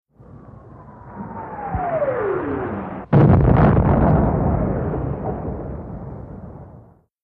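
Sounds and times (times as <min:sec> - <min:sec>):
incoming modern artillery shell whirring: 0:00.2 - 0:05.4.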